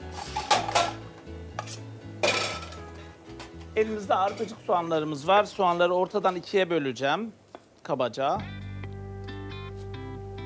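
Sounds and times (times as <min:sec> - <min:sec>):
frying pan clanking while cooking couscous risotto: 0:00.0 - 0:04.6
speech: 0:03.8 - 0:08.6.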